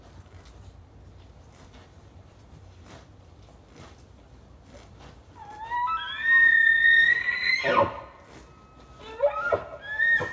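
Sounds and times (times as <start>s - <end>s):
Bull elk bugling: 5.4s - 10.3s.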